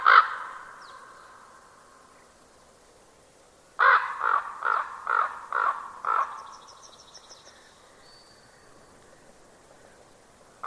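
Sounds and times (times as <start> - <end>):
bird cawing: 0.0 - 1.1, 3.8 - 6.7.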